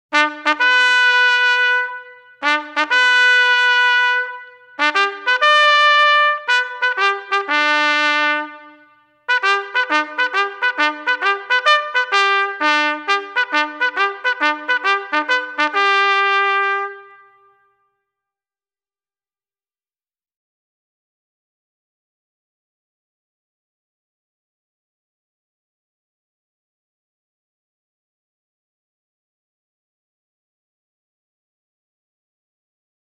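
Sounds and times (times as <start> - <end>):
bugle call: 0.1 - 17.6.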